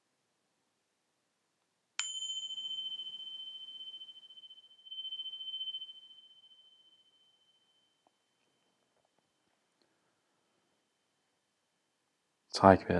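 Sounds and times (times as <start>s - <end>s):
single meditation bell struck and ringing: 2.0s - 9.6s
speech: 12.5s - 12.9s.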